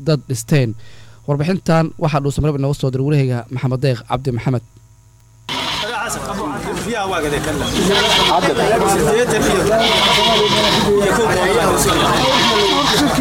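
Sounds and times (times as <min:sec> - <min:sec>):
speech: 0:00.0 - 0:04.8, 0:06.1 - 0:13.1
sheep and goats bleating at a busy livestock market: 0:05.5 - 0:06.0, 0:07.7 - 0:08.6, 0:09.6 - 0:11.0, 0:11.8 - 0:13.1
crowd chatter: 0:05.5 - 0:13.1.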